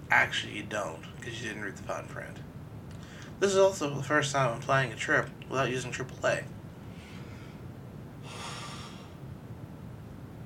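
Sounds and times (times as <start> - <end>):
speech: 0.1 - 2.5, 3.4 - 6.6
person yawning: 8.3 - 9.2.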